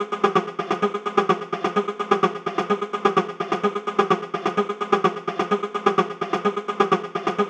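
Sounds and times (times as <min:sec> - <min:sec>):
analog melodic techno loop in F minor: 0:00.0 - 0:07.4.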